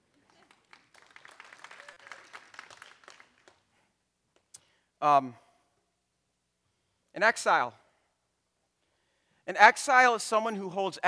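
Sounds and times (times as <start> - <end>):
room full of people applauding: 0.0 - 3.6
speech: 5.0 - 5.4, 7.2 - 7.8, 9.5 - 11.0.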